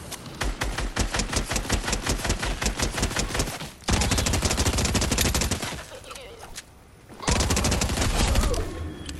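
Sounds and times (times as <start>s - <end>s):
video game dual submachine gun automatic fire: 0.4s - 5.9s, 7.3s - 8.7s.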